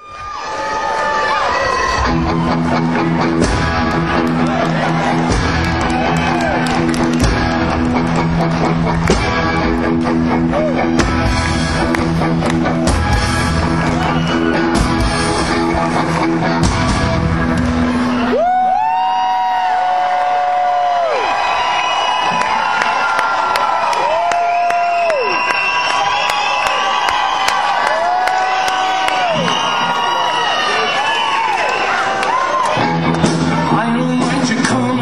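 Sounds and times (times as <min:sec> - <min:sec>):
live concert crowd roaring and cheering: 0:00.0 - 0:35.0
band playing steady repeated guitar riffs: 0:02.0 - 0:18.3.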